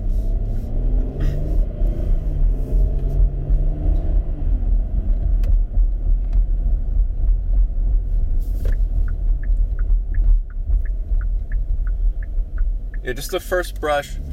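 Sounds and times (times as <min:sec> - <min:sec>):
2021 Kia Telluride SUV engine rumble pulling away in drive: 0:00.0 - 0:14.3
faint regular ticking: 0:08.7 - 0:14.0
speech: 0:13.1 - 0:14.3.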